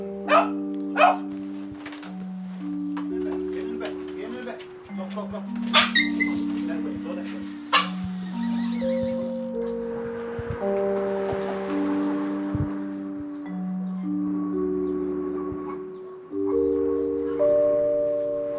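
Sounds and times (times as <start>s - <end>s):
sustained electronic tones: 0.0s - 18.5s
dog barking: 0.2s - 1.3s, 5.7s - 6.4s, 7.7s - 8.0s.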